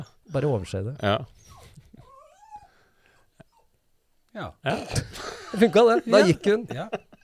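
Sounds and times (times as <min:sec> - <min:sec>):
speech: 0:00.3 - 0:01.5, 0:04.4 - 0:07.1
dog whimpering and whining: 0:01.4 - 0:02.8, 0:03.4 - 0:03.7.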